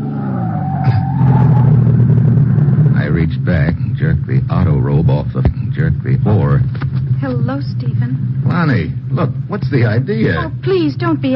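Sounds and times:
sedan tires squealing under hard braking on a bumpy road: 0.0 - 3.7
deep sedan engine rumble: 0.0 - 11.3
speech: 5.0 - 6.7, 7.4 - 11.3.

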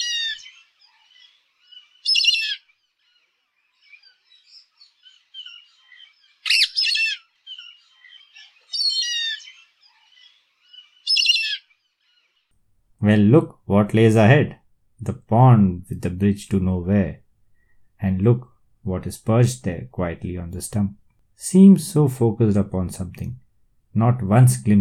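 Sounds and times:
Indian grey hornbill squawking calls: 0.0 - 0.8, 1.9 - 2.7, 6.4 - 9.8, 11.0 - 11.7
soft bird chirps: 0.0 - 12.5
speech: 13.0 - 17.2, 18.0 - 24.8.

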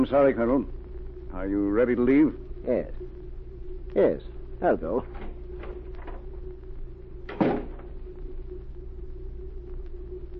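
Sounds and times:
speech: 0.0 - 3.2, 3.9 - 5.2
steady low mechanical hum: 0.0 - 10.3
door thudding shut: 7.3 - 7.9.

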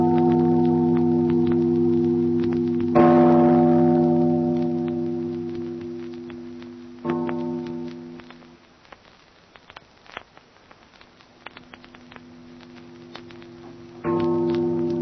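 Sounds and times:
heavy church tower bell tolling: 0.0 - 8.2, 14.0 - 15.0.

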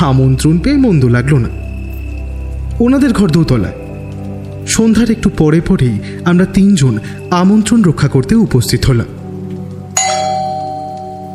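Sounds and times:
speech: 0.0 - 1.6, 2.8 - 3.8, 4.7 - 9.2
doorbell ding: 10.0 - 11.3.

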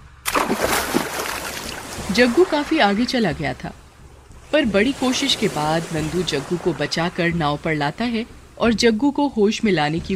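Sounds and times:
splash of someone jumping into sea: 0.3 - 3.0
churning, sloshing water: 0.3 - 8.7
speech: 2.1 - 3.8, 4.5 - 10.1.

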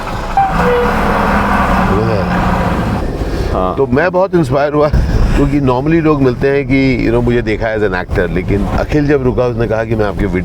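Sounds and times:
truck speeding past on the road with deep rumbling engine: 0.0 - 3.7
speech: 3.8 - 10.4.

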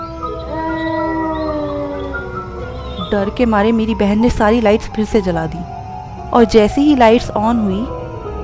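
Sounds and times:
several dogs howling loudly: 0.0 - 4.7
speech: 3.1 - 8.0.

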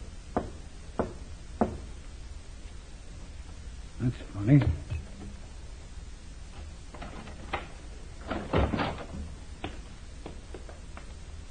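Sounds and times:
faint hum: 0.0 - 11.4
knocking on a warehouse side door: 0.3 - 1.9
speech: 4.0 - 4.9.

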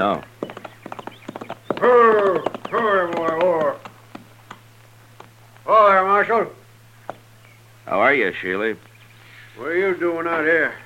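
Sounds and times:
speech: 0.0 - 0.3, 7.9 - 8.9, 9.6 - 10.8
horse hooves clip-clopping with a rider riding hard: 0.0 - 5.7.

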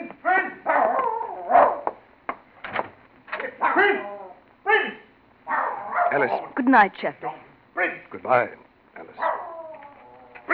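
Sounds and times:
dog barking: 0.6 - 2.0, 3.6 - 4.2, 5.4 - 6.6, 9.1 - 9.8
speech: 3.8 - 4.1, 6.2 - 7.3, 8.1 - 8.6.

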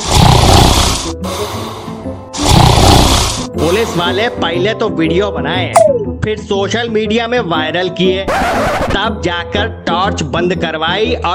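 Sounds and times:
man snoring while asleep: 0.0 - 3.5
speech: 3.9 - 11.3.

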